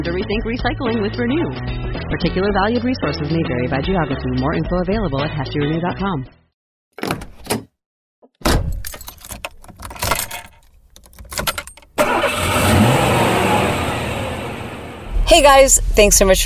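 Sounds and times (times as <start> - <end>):
speech: 0.0 - 6.4, 15.4 - 16.4
keys jingling: 8.7 - 12.0
car engine starting and rumbling heard from inside the vehicle: 12.0 - 16.4.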